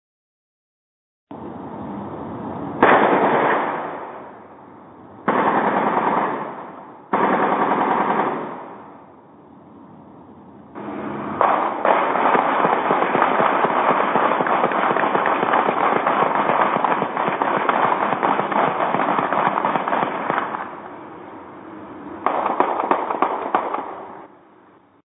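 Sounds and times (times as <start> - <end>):
gunfire recorded by gunshot detection sensors: 2.8 - 4.2, 5.3 - 8.8, 10.8 - 20.8, 22.2 - 24.2.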